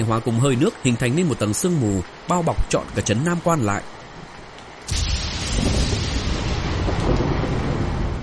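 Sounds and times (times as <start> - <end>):
speech: 0.0 - 4.0
heavy rain downpour: 0.0 - 8.2
thunder during heavy rain: 4.9 - 8.2.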